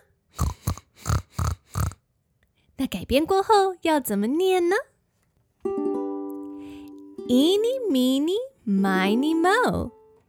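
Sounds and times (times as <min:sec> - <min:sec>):
voice imitating pig oink and snorting grunts in a children's English lesson: 0:00.0 - 0:02.0
speech: 0:02.8 - 0:04.9, 0:07.3 - 0:10.0.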